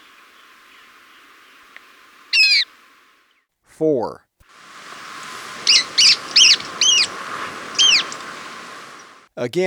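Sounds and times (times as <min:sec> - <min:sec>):
background hiss: 0:00.0 - 0:03.5, 0:04.4 - 0:09.6
stout-billed cinclodes giving sharp down-curved notes in Ecuador: 0:04.8 - 0:09.0.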